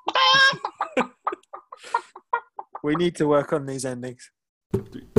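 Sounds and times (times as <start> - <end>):
person imitating a chicken squawking and clucking: 0.0 - 0.7
speech: 2.8 - 5.0.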